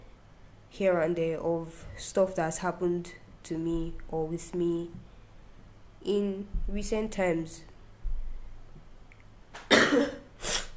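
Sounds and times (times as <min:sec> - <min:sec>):
speech: 0:00.8 - 0:05.1, 0:06.0 - 0:07.7
person coughing harshly: 0:09.7 - 0:10.7.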